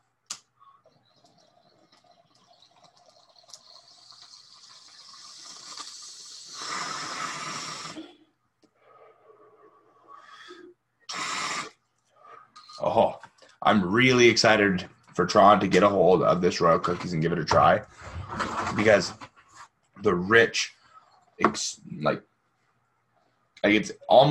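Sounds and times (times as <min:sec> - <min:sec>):
water bubbling and gurgling through a smoking rig: 0:00.6 - 0:08.1
speech: 0:13.0 - 0:19.2, 0:20.0 - 0:20.8, 0:21.4 - 0:22.3, 0:23.6 - 0:24.2.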